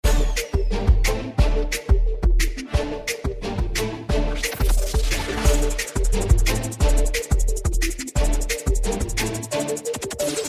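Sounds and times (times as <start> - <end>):
amplifier beat ringtone: 0.0 - 10.4.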